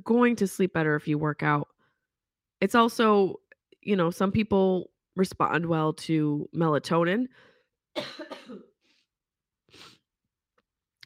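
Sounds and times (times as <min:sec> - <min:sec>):
speech: 0:00.0 - 0:01.7, 0:02.6 - 0:08.7
person coughing harshly: 0:08.0 - 0:08.8.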